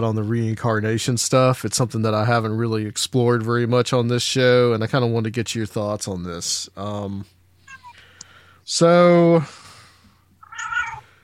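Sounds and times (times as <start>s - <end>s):
speech: 0.0s - 7.4s, 8.7s - 9.6s
house cat meowing: 7.7s - 8.0s, 10.4s - 11.1s.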